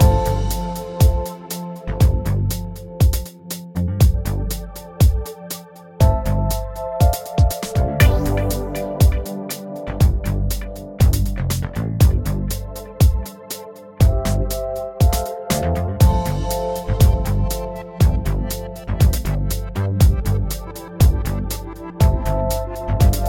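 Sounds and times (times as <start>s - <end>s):
main music: 0.0s - 23.2s.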